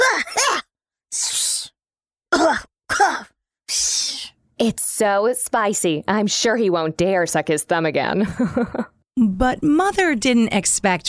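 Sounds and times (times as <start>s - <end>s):
person acting out a fit of coughing: 0.0s - 0.6s, 2.3s - 3.3s
speech: 4.6s - 11.0s.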